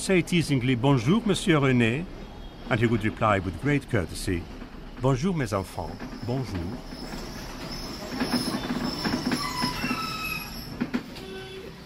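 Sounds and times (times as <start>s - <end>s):
speech: 0.0s - 7.2s
tram pulling into a stop: 0.0s - 11.8s
scattered tram rail clicks: 0.2s - 11.8s
high metallic tram wheel squeals: 5.7s - 11.8s.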